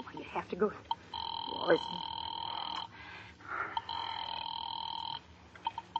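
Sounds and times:
speech: 0.4 - 0.9, 1.6 - 2.1
telephone ring tone heard down the line while calling the police department: 0.9 - 3.0, 3.7 - 5.9.

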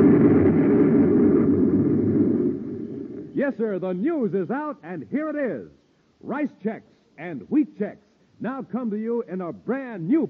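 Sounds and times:
deep explosion sound effect: 0.0 - 3.4
speech: 3.5 - 10.2.

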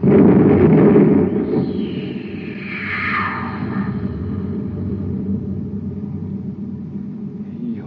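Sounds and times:
loud deep rumbling blast of a cosmic torpedo gun aboard a spaceship firing a torpedo: 0.0 - 7.8
high whooshing tone of a torpedo sweeping downward: 1.0 - 6.4.

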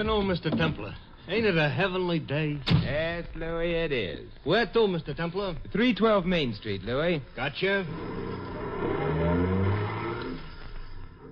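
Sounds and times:
speech: 0.0 - 8.6
taxi engine revving and pulling away: 7.8 - 10.7.

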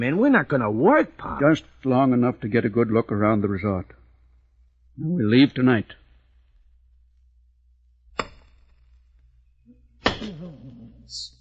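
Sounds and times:
speech: 0.0 - 4.0, 5.0 - 6.0
axe chopping wood: 8.2 - 8.7, 10.0 - 10.4.

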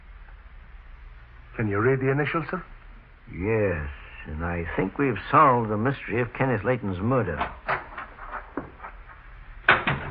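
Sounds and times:
speech: 1.6 - 2.7, 3.3 - 7.6
front door shutting with a solid thud: 7.4 - 10.0.

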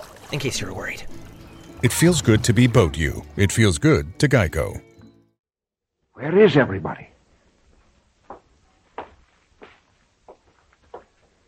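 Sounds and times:
speech: 0.3 - 4.9, 6.2 - 7.1
footsteps on a floor upstairs in a house: 7.7 - 11.4.

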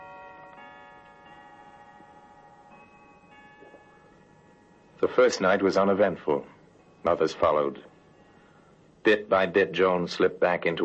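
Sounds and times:
clock chiming: 0.0 - 9.0
speech: 5.0 - 7.9, 9.0 - 10.8.

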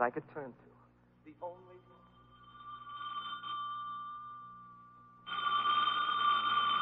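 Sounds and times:
old-fashioned telephone bell ringing: 1.6 - 6.8.

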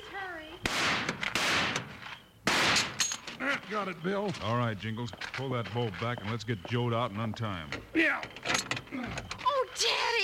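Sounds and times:
gunshots fired to blast a door lock off: 0.6 - 3.1
speech: 3.7 - 9.9.

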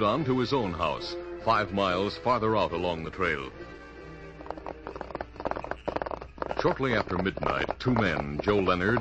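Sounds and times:
speech: 0.0 - 3.7, 6.6 - 8.9
hoofbeats of two ridden horses: 2.6 - 8.9.

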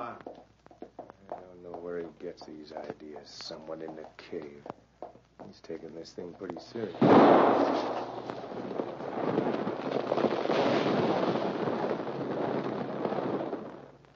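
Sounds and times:
speech: 2.4 - 4.8, 5.4 - 9.6
rocks loosened by a gunshot tumbling inside a cave: 6.6 - 14.1.

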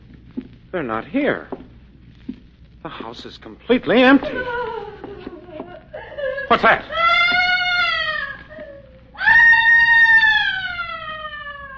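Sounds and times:
speech: 0.7 - 1.6, 2.8 - 4.8, 6.6 - 7.2
laughter: 4.1 - 7.0
person screaming: 6.9 - 11.7.

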